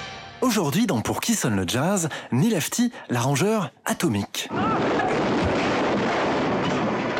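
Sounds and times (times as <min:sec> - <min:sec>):
speech: 0:00.5 - 0:04.9
loud explosion: 0:04.5 - 0:07.1.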